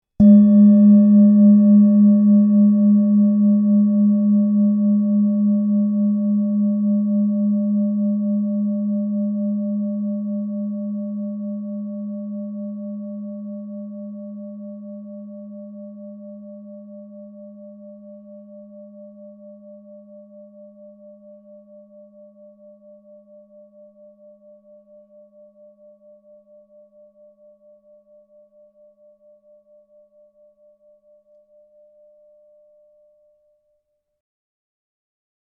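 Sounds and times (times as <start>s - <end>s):
702g singing bowl: 0.0s - 34.0s.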